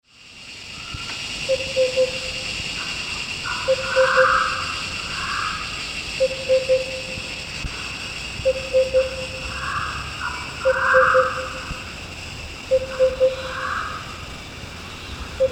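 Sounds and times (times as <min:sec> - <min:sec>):
constant hiss: 0:00.0 - 0:15.4
Sunda lesser cuckoo calling a three-note phrase: 0:01.4 - 0:02.6, 0:03.5 - 0:05.5, 0:06.2 - 0:07.4, 0:08.4 - 0:11.9, 0:12.7 - 0:14.2, 0:14.9 - 0:15.4.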